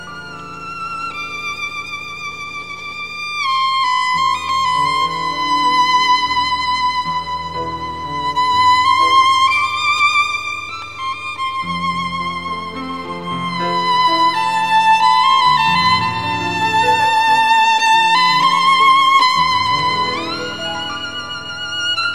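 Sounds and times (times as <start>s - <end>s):
piano: 0.0s - 22.1s
violin: 0.0s - 22.1s.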